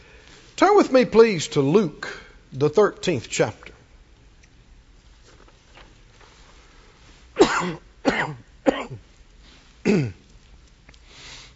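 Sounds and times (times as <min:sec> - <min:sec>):
speech: 0:00.6 - 0:03.7
person coughing harshly: 0:07.4 - 0:09.0, 0:09.8 - 0:10.2.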